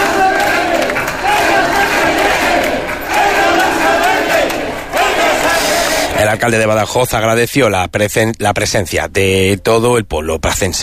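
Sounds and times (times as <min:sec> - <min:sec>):
large crowd chanting in unison at a rally: 0:00.0 - 0:06.5
speech: 0:06.3 - 0:10.8.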